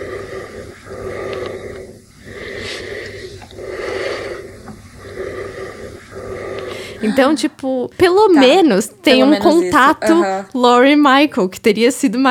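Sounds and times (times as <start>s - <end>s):
heavy menacing breathing imitated by a voice: 0.0s - 7.5s
speech: 7.0s - 12.2s.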